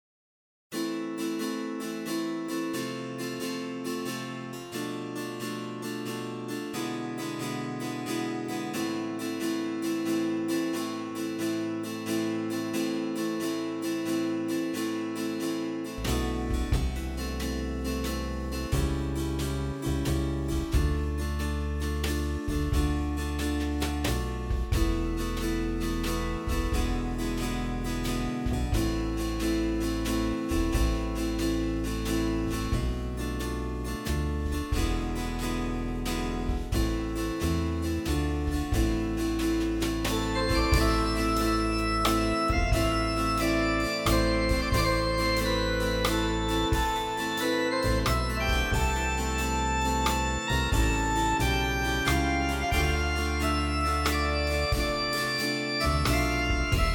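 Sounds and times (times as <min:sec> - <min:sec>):
guitar: 0:00.8 - 0:56.9
virginal: 0:00.8 - 0:56.9.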